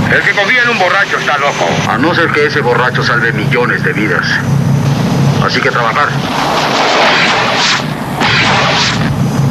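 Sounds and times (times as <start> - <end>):
speech: 0.1 - 4.6, 5.4 - 7.0
big whooshing blasts: 4.8 - 9.3
artillery explosions: 4.9 - 9.3
incoming rockets: 6.2 - 9.2.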